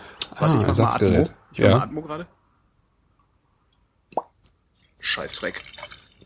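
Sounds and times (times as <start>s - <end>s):
speech: 0.4s - 2.4s, 5.1s - 6.0s
cork popping out of wine bottle opened with a waiter's knife: 4.1s - 4.5s.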